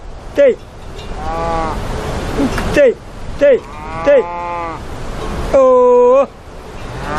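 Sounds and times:
outdoor noise: 0:00.0 - 0:07.1
herders from Calabria calling out: 0:00.3 - 0:07.1
speech: 0:00.4 - 0:04.9, 0:05.5 - 0:06.4
cattle lowing in long drawn-out moos: 0:01.0 - 0:02.8, 0:03.6 - 0:04.9, 0:06.7 - 0:07.1.

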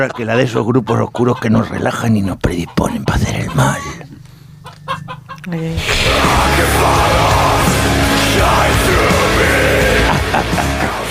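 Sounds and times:
speech: 0:00.0 - 0:04.0, 0:05.0 - 0:07.5, 0:08.4 - 0:11.0
rooster squawking and clucking frantically while running away: 0:00.0 - 0:06.0
laughter: 0:05.8 - 0:11.0.

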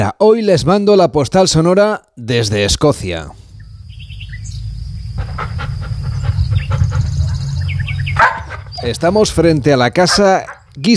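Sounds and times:
speech: 0:00.1 - 0:03.4, 0:08.8 - 0:10.9
birds chirping: 0:02.9 - 0:10.9
low rumble: 0:03.3 - 0:09.8
steady insect-like whine: 0:03.4 - 0:08.2
crowd of Golden Retriever dogs barking outdoors: 0:04.4 - 0:10.9.

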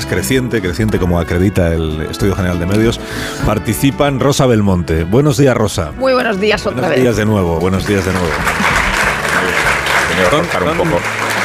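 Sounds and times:
speech: 0:00.1 - 0:08.6, 0:10.2 - 0:11.2
theatre audience applauding: 0:07.6 - 0:11.4.

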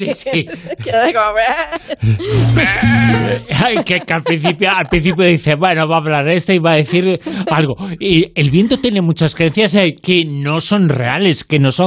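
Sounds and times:
laughter: 0:00.0 - 0:05.8, 0:06.5 - 0:09.1
speech: 0:00.0 - 0:11.8
sheep bleating: 0:02.5 - 0:03.5.

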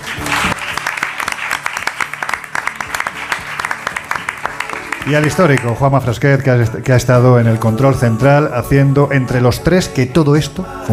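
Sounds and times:
large audience applauding in an assembly hall: 0:00.0 - 0:06.1
speech: 0:05.0 - 0:10.9.

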